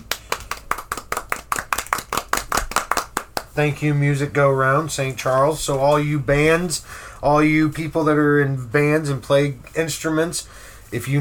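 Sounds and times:
round of applause with sharp hand claps: 0:00.0 - 0:03.6
speech: 0:03.6 - 0:11.1.

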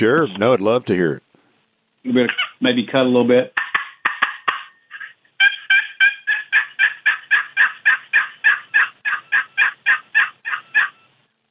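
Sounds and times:
speech: 0:00.0 - 0:01.2, 0:02.0 - 0:03.6
turkey yelps played on a cedar box call: 0:02.2 - 0:02.6, 0:03.5 - 0:11.2.

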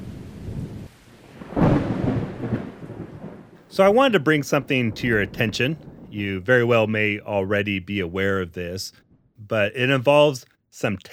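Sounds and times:
rolling thunder from a spring thunderstorm: 0:00.0 - 0:07.6
falling rain: 0:00.0 - 0:08.9
speech: 0:03.7 - 0:11.1.

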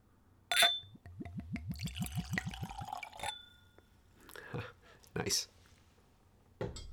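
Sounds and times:
glass clink: 0:00.5 - 0:01.1, 0:02.6 - 0:03.9
gin glugging from a screw-cap bottle into a Glencairn glass: 0:00.5 - 0:03.4
speech: 0:05.2 - 0:05.6.

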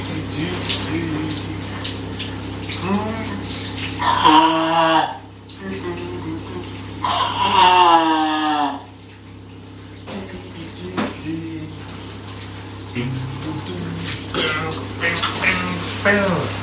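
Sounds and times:
person singing or humming: 0:00.0 - 0:01.8, 0:02.8 - 0:08.8, 0:10.1 - 0:11.9, 0:12.9 - 0:15.8
shower water running: 0:00.0 - 0:16.6.

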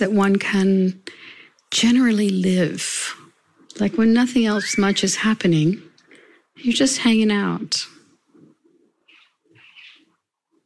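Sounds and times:
speech: 0:00.0 - 0:03.2, 0:03.8 - 0:05.9, 0:06.6 - 0:08.0
bird chirps: 0:09.1 - 0:10.1.

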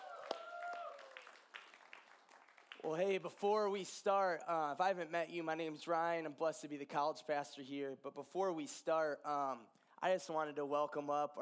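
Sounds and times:
scattered audience applause for a worship band: 0:00.0 - 0:03.0
speech: 0:02.8 - 0:11.4.

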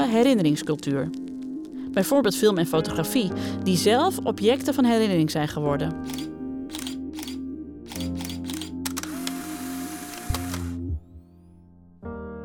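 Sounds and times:
speech: 0:00.0 - 0:01.3, 0:02.0 - 0:06.3
Super 8 film camera whirring and rattling while running: 0:06.0 - 0:11.0.

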